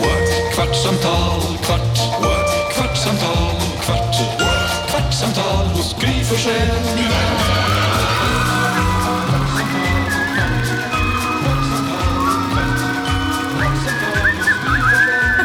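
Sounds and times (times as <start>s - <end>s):
speech: 0.6s - 4.5s, 5.2s - 7.6s
steady music with a pulsing low beat: 5.6s - 15.4s
person whistling a tune in short gliding high phrases: 7.7s - 15.4s.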